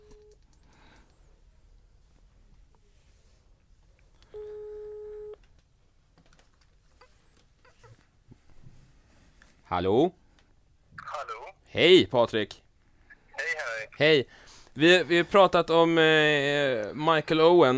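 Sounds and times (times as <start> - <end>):
telephone ringback tone of an outgoing phone call: 4.3 - 5.4
speech: 9.7 - 10.2, 11.8 - 12.6, 14.0 - 17.7.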